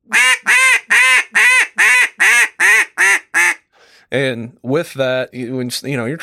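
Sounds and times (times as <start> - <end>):
duck call blown in a hail greeting call: 0.1 - 3.7
speech: 4.1 - 6.2.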